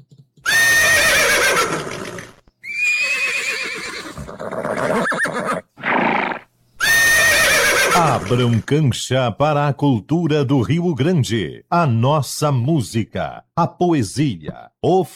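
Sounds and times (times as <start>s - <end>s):
several horses neighing: 0.4s - 8.7s
speech: 8.3s - 15.1s.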